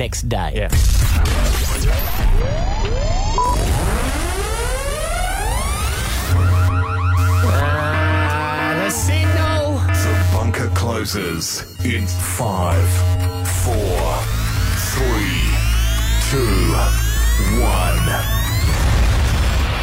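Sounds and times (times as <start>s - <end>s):
speech: 0.0s - 3.8s, 10.8s - 14.3s, 16.3s - 18.3s
rising electronic wails: 1.8s - 19.8s
loud chaotic alarm blaring in a studio: 2.0s - 19.8s
steady buzzing tones: 3.4s - 19.8s.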